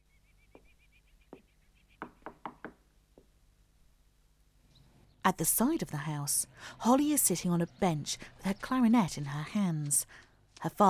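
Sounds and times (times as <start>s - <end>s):
man knocking on the front door of a house: 1.3s - 3.3s
speech: 5.3s - 10.8s.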